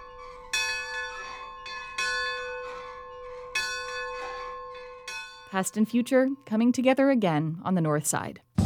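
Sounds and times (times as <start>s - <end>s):
large bell ringing at the Railroad Museum in Wilmington: 0.0s - 6.5s
speech: 5.5s - 8.5s.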